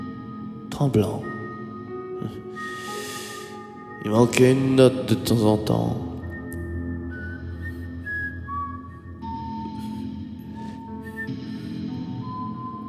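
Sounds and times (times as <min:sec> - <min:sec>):
speech: 0:00.8 - 0:01.3, 0:04.1 - 0:06.1
person whistling a slow melody: 0:07.0 - 0:12.8.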